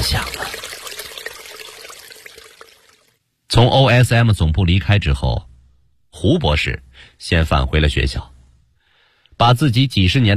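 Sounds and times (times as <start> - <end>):
flowing water trickling: 0.0 - 3.2
speech: 3.5 - 5.5, 6.2 - 8.3, 9.4 - 10.3.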